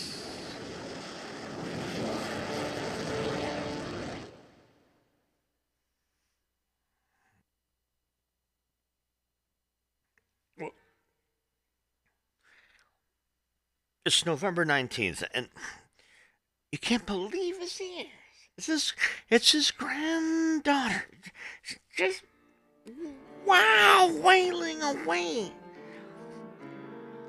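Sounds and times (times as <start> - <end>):
helicopter flying overhead: 0.0 - 4.6
speech: 14.1 - 15.8, 16.7 - 22.3, 22.9 - 25.6.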